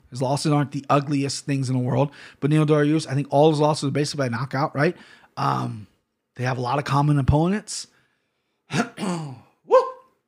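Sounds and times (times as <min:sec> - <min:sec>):
speech: 0:00.1 - 0:07.9, 0:08.7 - 0:09.4
person with allergies clearing throat: 0:08.7 - 0:10.0.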